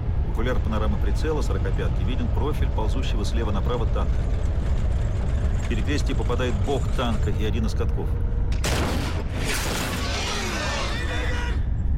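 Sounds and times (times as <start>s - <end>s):
speech: 0.4s - 4.7s, 5.7s - 8.3s
45 mm anti-tank cannon firing at a tank: 8.5s - 11.0s
dense continuous roar of battle noise: 9.4s - 11.6s.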